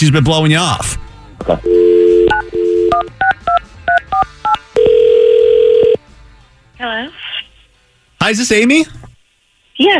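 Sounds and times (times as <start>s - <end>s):
speech: 0.0s - 3.2s, 6.8s - 7.2s, 8.2s - 9.0s, 9.8s - 9.9s
telephone dial tone: 1.6s - 3.1s, 4.8s - 6.0s.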